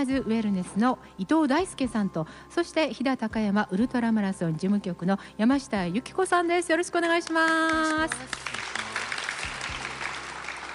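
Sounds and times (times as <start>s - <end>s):
speech: 0.0s - 8.8s
audience applause welcoming guests at a talk about an ultramarathon: 7.4s - 10.7s.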